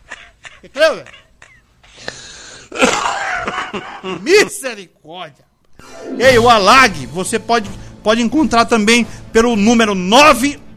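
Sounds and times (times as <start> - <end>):
raspy coughing: 0.0 - 4.3
speech: 0.6 - 1.2, 3.7 - 10.6
harsh wheezy breaths: 1.8 - 2.7.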